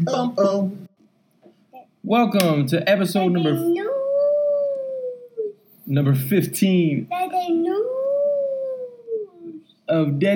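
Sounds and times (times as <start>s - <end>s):
speech: 0.0s - 0.9s, 2.0s - 4.0s, 5.9s - 7.9s, 9.9s - 10.3s
voice imitating a little wolf howling: 3.4s - 5.6s, 7.4s - 9.6s.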